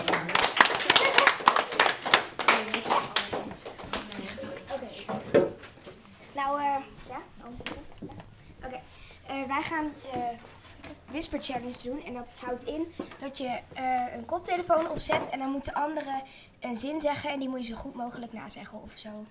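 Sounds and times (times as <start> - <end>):
small group clapping: 0.0 - 5.8
speech: 9.5 - 19.2.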